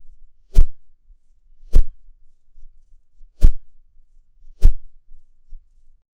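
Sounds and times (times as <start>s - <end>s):
cartoon golf swing: 3.4s - 3.6s, 4.6s - 4.8s.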